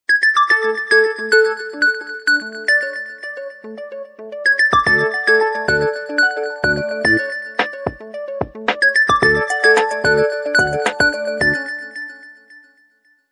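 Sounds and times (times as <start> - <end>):
LG VX9200 midi phone ringtone: 0.1 - 12.6.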